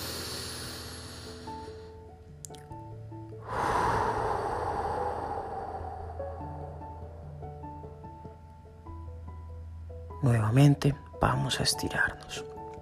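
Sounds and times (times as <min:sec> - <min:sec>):
long deep breath during a stretching and breathing exercise: 0:00.0 - 0:02.1, 0:03.4 - 0:07.9
soft steady music: 0:00.0 - 0:12.8
speech: 0:10.2 - 0:12.5.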